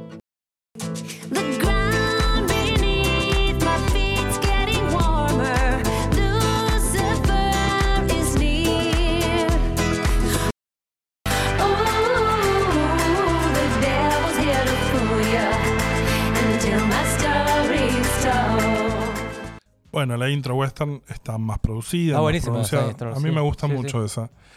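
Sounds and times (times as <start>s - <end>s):
pop song demo with effects and reverb: 1.0s - 10.5s, 11.3s - 19.6s
speech: 20.8s - 24.5s.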